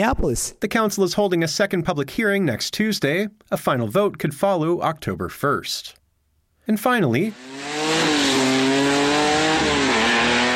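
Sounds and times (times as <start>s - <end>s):
speech: 0.0s - 6.0s, 6.7s - 8.2s
drag racing car engine roaring on a drag strip during street-legal drag racing night: 7.3s - 10.5s.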